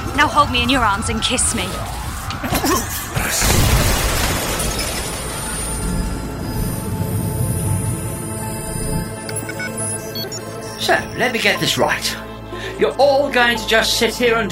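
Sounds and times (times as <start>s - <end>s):
speech: 0.2s - 2.0s, 2.6s - 3.9s, 10.9s - 12.2s, 12.8s - 14.5s
loud blast: 3.1s - 8.4s.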